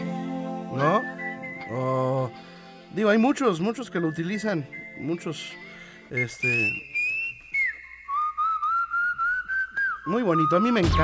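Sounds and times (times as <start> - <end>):
person whistling a rock song melody: 0.0 - 11.0
speech: 3.0 - 6.9, 10.1 - 11.0.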